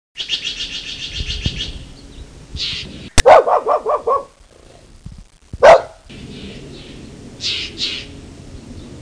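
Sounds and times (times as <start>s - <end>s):
bird calls: 0.2s - 3.2s, 5.7s - 8.2s.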